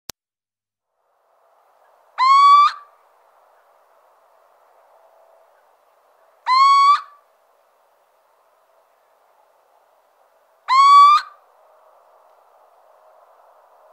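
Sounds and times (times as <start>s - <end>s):
Little owl mewing hoots: 2.2s - 2.9s, 6.4s - 7.2s, 10.7s - 11.4s.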